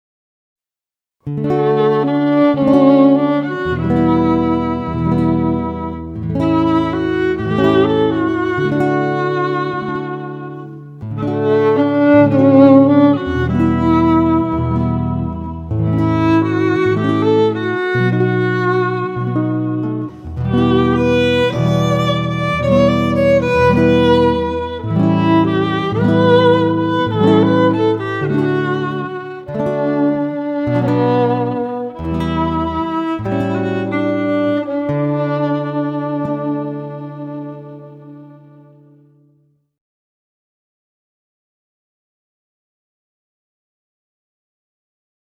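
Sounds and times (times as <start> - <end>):
guitar: 1.2 - 39.6
violin: 1.3 - 39.2.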